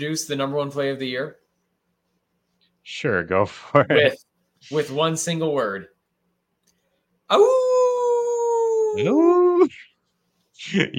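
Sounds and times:
speech: 0.0s - 1.4s, 2.8s - 5.9s, 7.3s - 7.7s, 9.0s - 9.9s, 10.6s - 10.9s
person imitating a wolf howl: 7.3s - 9.7s.

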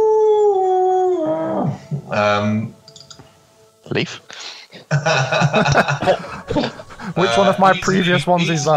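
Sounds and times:
person imitating wolves howling: 0.0s - 2.2s
speech: 2.1s - 2.8s, 3.9s - 8.7s
laughter: 4.9s - 8.1s.

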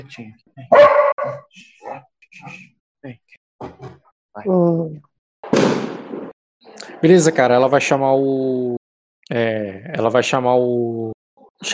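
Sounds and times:
speech: 0.0s - 3.4s, 4.4s - 5.0s, 7.0s - 11.7s
nervous dog barking: 0.7s - 2.0s.

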